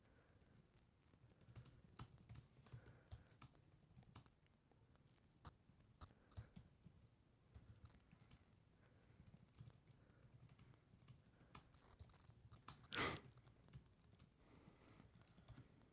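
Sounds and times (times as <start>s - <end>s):
fingers typing on a computer keyboard: 0.3s - 4.4s, 6.1s - 6.9s, 7.5s - 8.5s, 9.0s - 14.3s, 15.1s - 15.7s.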